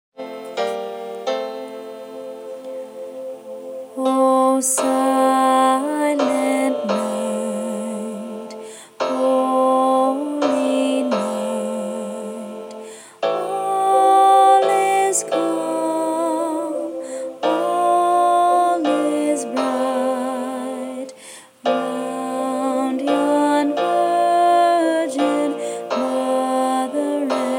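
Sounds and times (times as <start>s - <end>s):
alto part of a Christmas carol: 0.2s - 27.5s.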